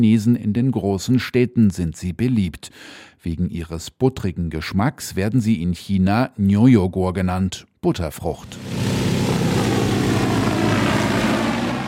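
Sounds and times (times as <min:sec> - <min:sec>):
speech: 0:00.0 - 0:09.0
propellers of a large cargo drone flying overhead in China: 0:08.5 - 0:11.8.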